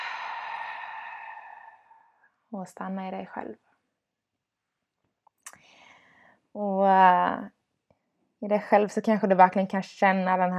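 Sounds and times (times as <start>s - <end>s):
long slow exhale of breath: 0.0s - 2.1s
speech: 2.5s - 3.7s, 6.6s - 7.6s, 8.4s - 10.5s.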